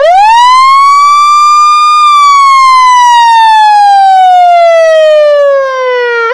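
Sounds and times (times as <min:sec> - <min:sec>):
American fire truck siren: 0:00.0 - 0:06.3
laughter: 0:01.2 - 0:03.4.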